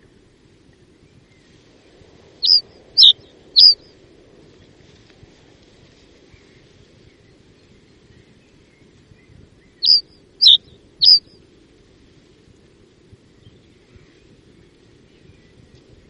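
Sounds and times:
common reed bunting thin falling call notes: 2.4 - 3.8, 9.8 - 11.3.

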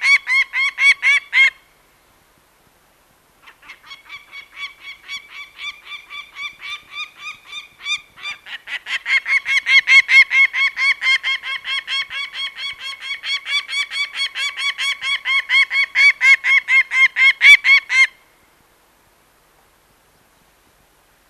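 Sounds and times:
peregrine falcon harsh kak calls: 0.0 - 1.6, 3.4 - 18.2.

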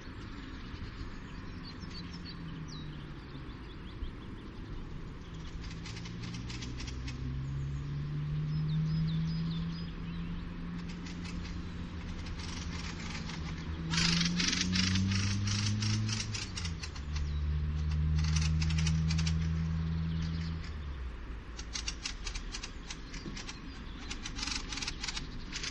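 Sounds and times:
droning engine hum: 0.0 - 25.6
fieldfare chattering calls: 10.8 - 20.7, 21.6 - 25.6.

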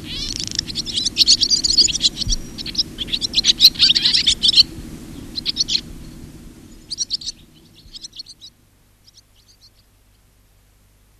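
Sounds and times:
barn swallow chattering: 0.0 - 5.9, 6.8 - 8.5
low background hum: 0.0 - 11.1.

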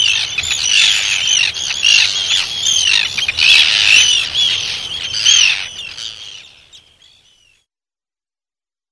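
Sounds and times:
chorus of Arctic terns giving harsh grating screeches: 0.0 - 6.4.

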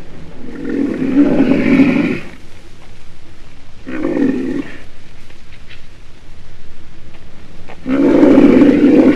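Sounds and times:
black rhinoceros roaring calls: 0.4 - 2.4, 3.8 - 4.9, 7.8 - 9.1.

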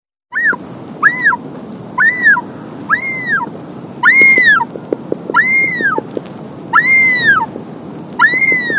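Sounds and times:
wandering albatross giving arched whining calls: 0.3 - 1.4, 2.0 - 6.1, 6.7 - 7.5, 8.2 - 8.7
continuous rushing noise: 0.4 - 8.7.

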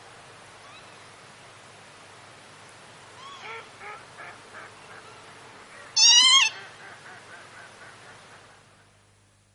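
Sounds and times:
Northern lapwing calls: 3.2 - 8.0.

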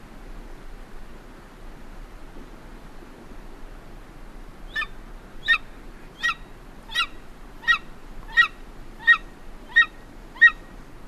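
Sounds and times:
golden eagle yelping: 4.7 - 5.6, 6.2 - 11.0.

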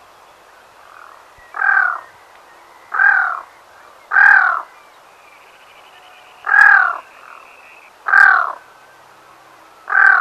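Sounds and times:
black-throated loon croaking: 0.8 - 2.2, 2.8 - 4.8, 5.5 - 8.6, 9.8 - 10.1.

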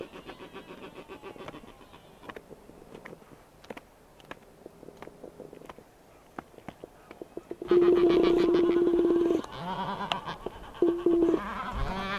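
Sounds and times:
Black-browed albatross calling: 0.0 - 2.4, 6.8 - 12.1.

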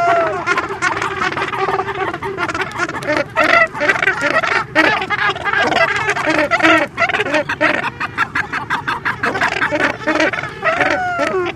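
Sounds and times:
Cape gannets calling in a dense chorus: 0.0 - 11.5.

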